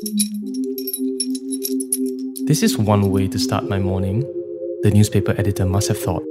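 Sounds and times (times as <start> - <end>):
speech: 0.0 - 0.5, 2.5 - 6.2
small loose objects jingling inside a wrapped package being handled: 0.0 - 2.5.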